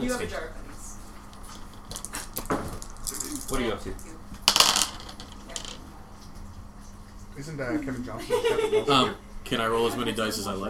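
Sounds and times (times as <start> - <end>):
speech: 0.0 - 0.6, 3.5 - 4.2, 7.4 - 10.6
pennies clinking and rattling inside a jar: 4.5 - 5.8
laughter: 7.7 - 9.2.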